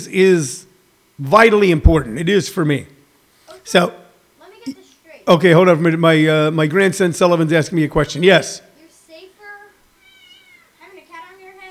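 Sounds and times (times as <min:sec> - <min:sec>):
speech: 0:00.0 - 0:00.6, 0:01.2 - 0:03.0, 0:03.6 - 0:04.0, 0:04.6 - 0:08.7
cat sitting on a person's head meowing: 0:10.0 - 0:10.8.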